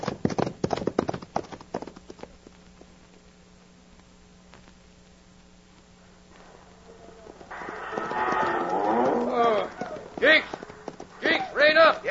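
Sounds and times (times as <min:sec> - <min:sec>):
horses galloping on a dusty trail: 0:00.0 - 0:03.0, 0:06.4 - 0:12.0
rough bellowing noise: 0:06.5 - 0:11.6.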